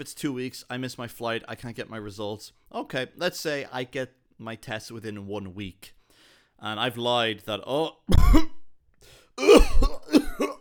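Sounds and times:
speech: 0:00.0 - 0:06.0, 0:06.6 - 0:08.6
man fake coughing: 0:08.1 - 0:08.6, 0:09.4 - 0:10.6.

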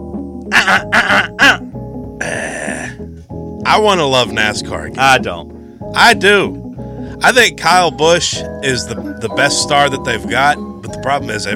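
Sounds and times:
rough throat-clearing bursts and raspy harrumph: 0:00.5 - 0:03.0
speech: 0:00.7 - 0:01.6, 0:03.7 - 0:06.6, 0:07.2 - 0:11.5.

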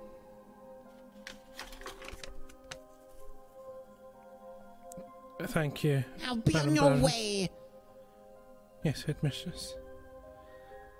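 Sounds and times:
written note fluttering through the air: 0:01.3 - 0:02.8
speech: 0:05.4 - 0:07.5, 0:08.8 - 0:09.8.

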